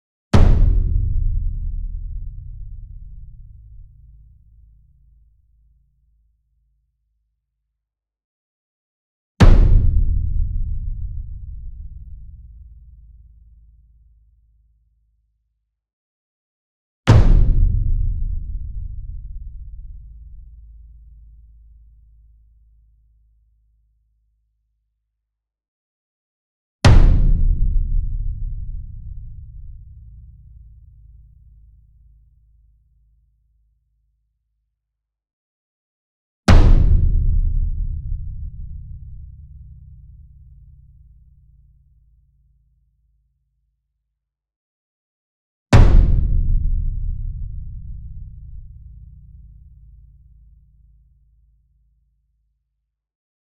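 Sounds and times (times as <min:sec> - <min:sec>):
concert bass drum hit: 0:00.4 - 0:03.6, 0:09.4 - 0:11.5, 0:17.1 - 0:19.4, 0:26.9 - 0:29.3, 0:36.5 - 0:38.8, 0:45.8 - 0:48.4.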